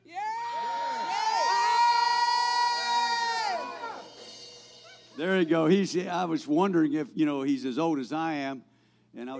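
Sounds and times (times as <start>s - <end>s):
audience screaming on cue: 0.0s - 4.2s
individual audience members shouting: 0.1s - 4.1s
speech: 5.2s - 9.3s.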